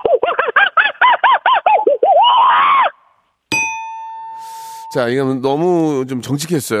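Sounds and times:
voice imitating a fleeing monkey with high hooting screeches: 0.0s - 3.0s
speech: 4.9s - 6.7s.

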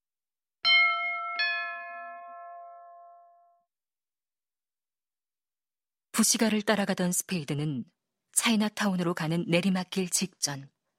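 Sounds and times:
doorbell two-note ding-dong chime: 0.6s - 3.7s
speech: 6.2s - 10.8s.

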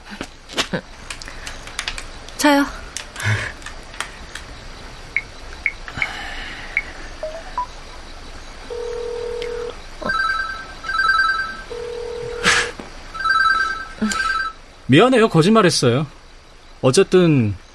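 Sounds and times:
speech: 0.7s - 1.0s, 2.4s - 2.8s, 14.9s - 16.2s, 16.8s - 17.6s
mobile phone ringing with an electronic trilling ringtone: 8.7s - 12.4s, 13.2s - 14.6s.

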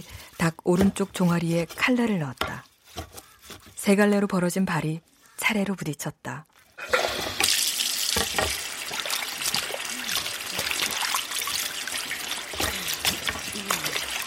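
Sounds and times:
speech: 0.0s - 2.5s, 3.9s - 6.9s
water running from a scale-crusted faucet: 6.9s - 14.2s.

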